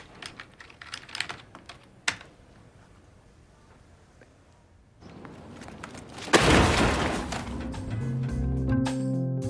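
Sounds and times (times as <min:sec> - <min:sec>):
rapid keyboard typing: 0:00.0 - 0:02.3
computer hurled into a dumpster crashing: 0:06.2 - 0:08.5.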